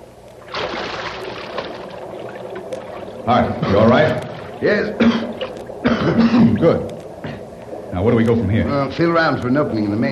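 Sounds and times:
water churning and sloshing in a sewer: 0.3 - 10.1
person dropping into water in a sewer: 0.4 - 3.1
speech: 3.2 - 6.9, 7.9 - 10.1.

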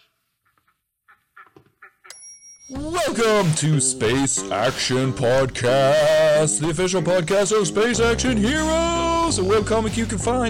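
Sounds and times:
ducks quacking: 0.4 - 2.1, 4.1 - 7.9
sharp bright ringing tone: 2.1 - 3.4
speech: 2.7 - 10.4.

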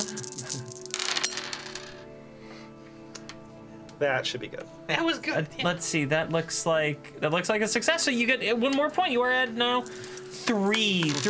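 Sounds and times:
handful of dice clattering across a hard surface: 0.0 - 2.0, 9.8 - 11.2
speech: 4.0 - 11.2.

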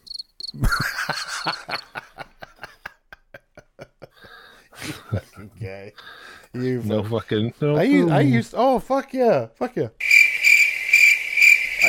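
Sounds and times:
crickets chirping: 0.0 - 2.0, 10.0 - 11.8
laughter: 0.6 - 7.5
speech: 5.6 - 10.0.

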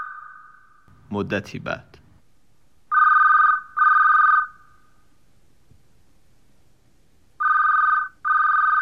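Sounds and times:
speech: 1.1 - 2.0
telephone ringing with electronic trills: 2.9 - 4.6, 7.4 - 8.8.

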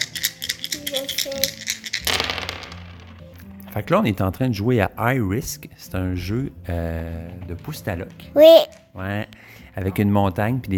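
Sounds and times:
many dice rattling in cupped hands for a board game throw: 0.0 - 3.3
speech: 3.8 - 10.7.

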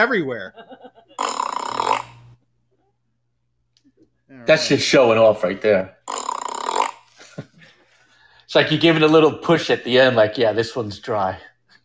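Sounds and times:
speech: 0.0 - 0.9, 4.3 - 6.2, 8.5 - 11.5
voice making a raspy imitation of a fart: 1.2 - 2.4, 6.1 - 7.1.

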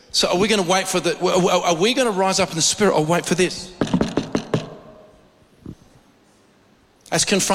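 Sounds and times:
speech: 0.1 - 4.0, 7.1 - 7.5
knocks on a wooden door: 3.8 - 4.8.

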